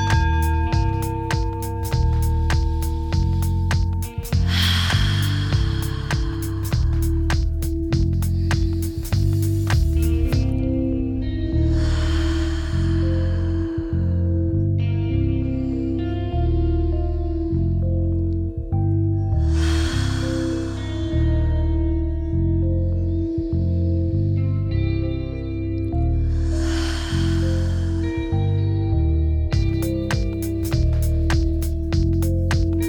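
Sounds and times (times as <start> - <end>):
deep breathing in through nose and out through mouth: 0.0 - 16.2, 19.4 - 24.4, 26.0 - 32.8
sustained musical drone: 0.0 - 32.8.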